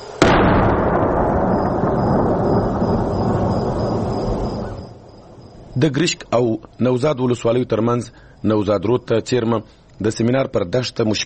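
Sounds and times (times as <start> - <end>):
large artillery cannon firing: 0.0 - 5.8
speech: 5.8 - 11.2.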